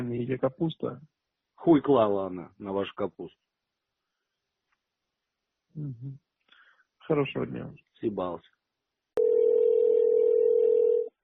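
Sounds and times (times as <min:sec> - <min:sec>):
speech: 0:00.0 - 0:03.4, 0:05.8 - 0:06.2, 0:07.1 - 0:08.6
telephone line tone while a call is connecting: 0:09.2 - 0:11.1.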